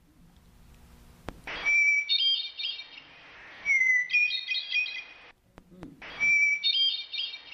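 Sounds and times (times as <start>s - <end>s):
hermit thrush song with long whistled note and fluty ornaments: 1.5s - 5.2s, 6.1s - 7.5s.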